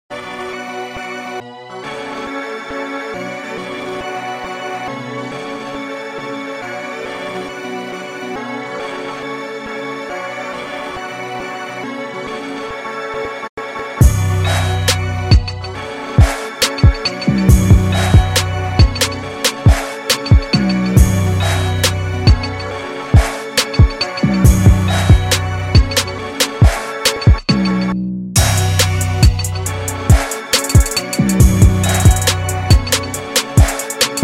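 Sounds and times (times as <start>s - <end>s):
drum kit: 14.8s - 21.2s, 21.8s - 22.6s, 23.2s - 27.8s, 28.4s - 34.2s.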